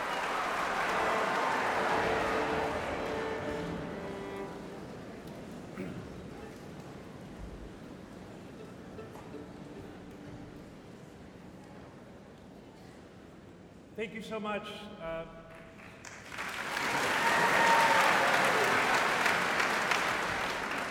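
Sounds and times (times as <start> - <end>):
large concert audience applauding and cheering for an encore: 0.0 - 5.7, 15.5 - 20.8
speech: 14.0 - 15.4.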